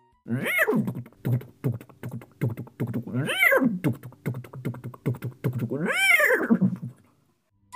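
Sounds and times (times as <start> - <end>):
speech: 0.2 - 0.6
horse neighing: 0.3 - 1.1, 3.0 - 3.9, 5.6 - 7.0.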